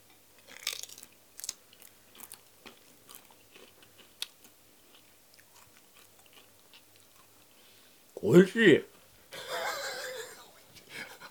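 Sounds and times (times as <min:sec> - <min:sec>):
crunchy chewing of food topped with wasabi pickles: 0:00.4 - 0:07.6
speech: 0:08.2 - 0:08.9
laughter: 0:09.4 - 0:11.3.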